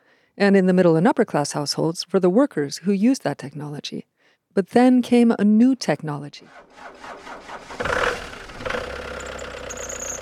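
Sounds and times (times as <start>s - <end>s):
speech: 0.4s - 8.0s
vintage car engine sputtering and idling: 6.5s - 10.1s.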